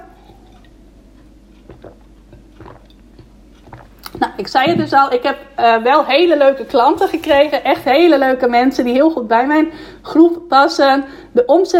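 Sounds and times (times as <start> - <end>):
low steady hum: 0.0 - 11.7
person sipping and swallowing water: 0.1 - 4.8
speech: 4.4 - 11.7.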